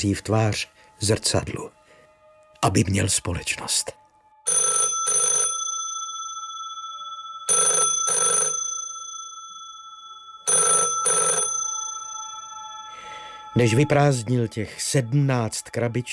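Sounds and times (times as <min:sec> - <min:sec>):
speech: 0:00.0 - 0:01.8, 0:02.6 - 0:04.0, 0:13.6 - 0:16.1
old-fashioned telephone bell ringing: 0:04.5 - 0:13.9.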